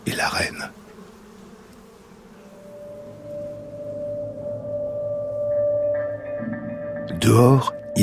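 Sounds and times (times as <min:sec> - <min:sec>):
honeybee colony clustered in winter inside the hive buzzing: 0:00.0 - 0:08.0
speech: 0:00.1 - 0:00.8, 0:07.2 - 0:08.0
faint higher tones: 0:02.4 - 0:08.0.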